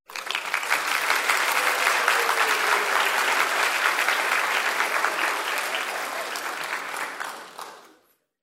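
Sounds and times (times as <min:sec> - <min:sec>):
audience clapping: 0:00.0 - 0:08.2.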